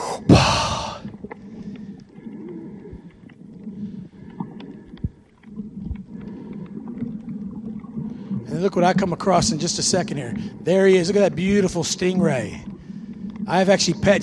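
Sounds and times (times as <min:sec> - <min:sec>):
low rumbling: 0:00.0 - 0:01.2
loud hissing inhale: 0:00.0 - 0:05.3, 0:06.1 - 0:07.0
bubbling underwater sounds in a canal: 0:00.0 - 0:14.2
faint clicks: 0:01.0 - 0:08.4, 0:12.6 - 0:13.5
speech: 0:08.6 - 0:12.7, 0:13.5 - 0:14.2.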